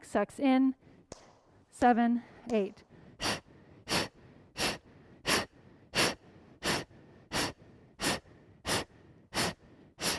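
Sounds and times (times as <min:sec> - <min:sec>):
speech: 0:00.0 - 0:00.8, 0:01.8 - 0:02.9
forceful exhales pushed from the stomach in a breathing-exercise class: 0:02.9 - 0:10.1.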